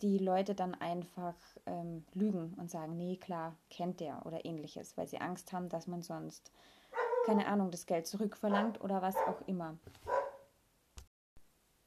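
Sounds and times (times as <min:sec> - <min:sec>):
speech: 0:00.0 - 0:10.2
dog barking: 0:06.9 - 0:07.4, 0:08.5 - 0:09.5, 0:10.1 - 0:10.5.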